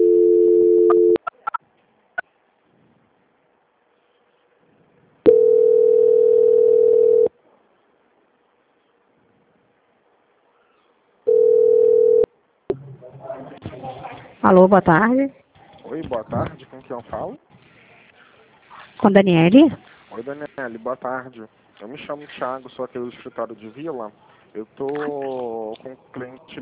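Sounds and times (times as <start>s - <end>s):
telephone line noise on picking up: 0.0s - 1.2s, 5.3s - 7.3s, 11.3s - 12.3s
telephone ringback tone during a call transfer: 0.0s - 1.2s, 5.3s - 7.3s, 11.3s - 12.3s
speech: 14.5s - 17.4s, 19.0s - 26.6s.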